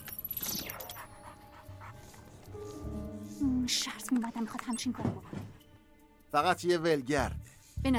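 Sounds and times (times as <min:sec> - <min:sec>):
dog panting: 0:00.8 - 0:03.2, 0:05.0 - 0:05.7
speech: 0:03.7 - 0:05.6, 0:06.3 - 0:07.9.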